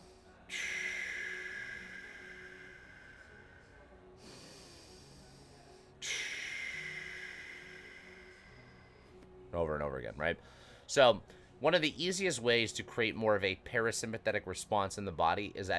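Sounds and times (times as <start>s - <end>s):
paced nasal breathing exercise with shorter inhales and longer exhales: 0.0s - 9.3s
speech: 9.5s - 15.7s.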